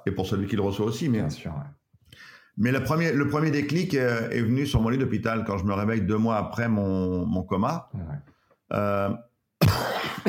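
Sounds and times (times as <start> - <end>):
speech: 0.0 - 9.9
person giving a short rough cough: 9.6 - 10.2.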